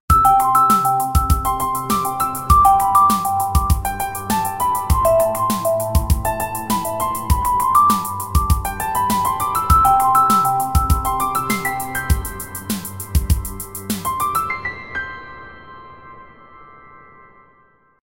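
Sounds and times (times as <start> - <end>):
flying piano ringtone melody on a mobile phone: 0.1 - 14.1.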